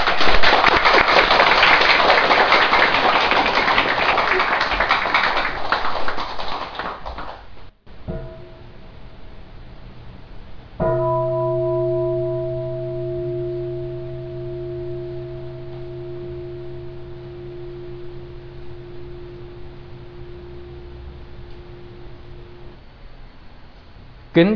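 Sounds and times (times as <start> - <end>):
large crowd applauding: 0.0 - 7.7
faint tones: 7.9 - 24.4
brief bell-like ringing: 10.8 - 22.8
speech: 24.4 - 24.5.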